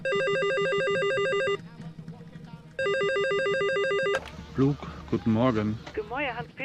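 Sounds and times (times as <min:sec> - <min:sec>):
telephone ringing with a warbling electronic trill: 0:00.0 - 0:01.6, 0:02.8 - 0:04.3
faint murmur: 0:00.6 - 0:06.6
speech: 0:04.6 - 0:06.6.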